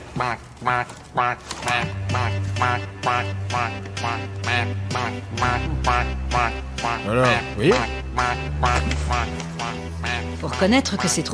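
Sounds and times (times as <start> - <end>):
duck quacking: 0.1 - 11.3
speech: 0.2 - 11.3
low sustained hum: 4.3 - 11.1.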